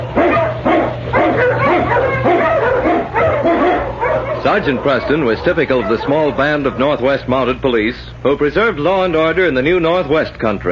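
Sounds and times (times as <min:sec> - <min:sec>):
sled dogs barking and yipping: 0:00.0 - 0:07.6
low constant hum: 0:00.0 - 0:10.7
speech: 0:04.5 - 0:10.7.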